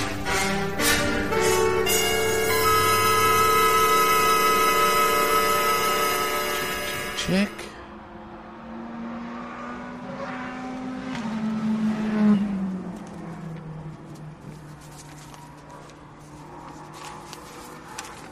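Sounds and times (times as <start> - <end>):
sports car whining pass: 0.0 - 13.7
sports cars droning in a sports car championship practice session: 0.0 - 18.3
speech: 7.3 - 7.7.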